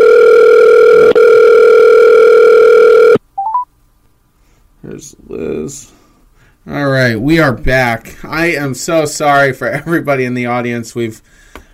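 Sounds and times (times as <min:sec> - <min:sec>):
steady telephone dial tone: 0:00.0 - 0:03.6
speech: 0:07.3 - 0:11.4.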